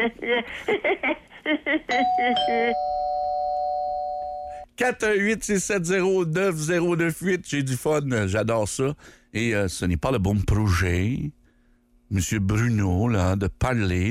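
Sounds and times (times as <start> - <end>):
speech: 0.0 - 2.9, 4.8 - 11.4, 12.1 - 14.0
two-tone doorbell chime ringing: 1.9 - 4.6.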